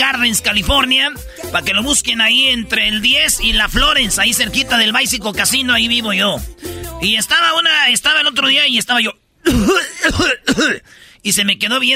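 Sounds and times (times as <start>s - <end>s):
speech: 0.0s - 11.9s
person imitating a cough: 9.4s - 10.9s.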